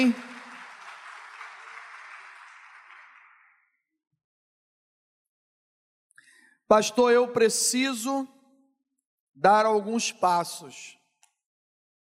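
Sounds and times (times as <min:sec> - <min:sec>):
speech: 0:00.0 - 0:00.3, 0:06.7 - 0:08.4, 0:09.4 - 0:11.0
crowd's sustained applause: 0:00.0 - 0:03.7.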